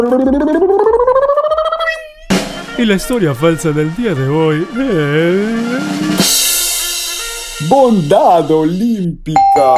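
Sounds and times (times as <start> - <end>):
speech: 0.0 - 1.4, 2.8 - 6.4, 7.6 - 9.7
vocal hissing crash-like burst: 2.3 - 8.0
voice imitating a snare drum roll: 2.3 - 8.6.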